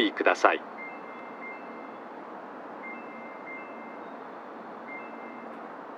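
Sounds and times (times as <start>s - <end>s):
speech: 0.0s - 0.7s
train pulling away from a station platform in Japan: 0.0s - 5.8s
short electronic beeps: 0.7s - 2.1s, 2.8s - 4.2s, 4.8s - 5.6s.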